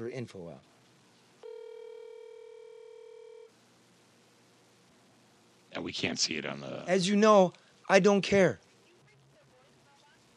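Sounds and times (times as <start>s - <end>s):
speech: 0.0s - 0.8s, 5.8s - 8.6s
telephone ringback tone on an unanswered outgoing call: 1.4s - 3.5s.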